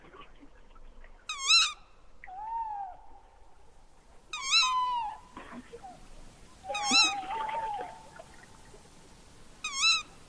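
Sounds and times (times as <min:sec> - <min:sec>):
tawny owl calls: 0:01.3 - 0:03.2, 0:04.3 - 0:06.0, 0:06.6 - 0:08.2, 0:09.6 - 0:10.2.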